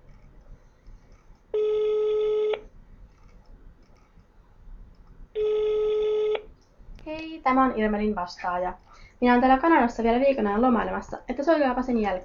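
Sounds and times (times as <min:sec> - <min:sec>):
telephone ringback tones of an outgoing call: 0:01.5 - 0:02.7, 0:05.4 - 0:06.4
speech: 0:07.4 - 0:12.2.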